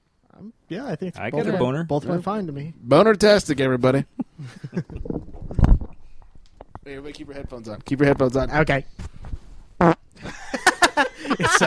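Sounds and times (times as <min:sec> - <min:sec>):
speech: 0:00.4 - 0:05.1, 0:06.9 - 0:09.1, 0:11.2 - 0:11.6
laughter: 0:04.2 - 0:05.1, 0:10.2 - 0:11.6
fart into microphone: 0:09.8 - 0:10.1.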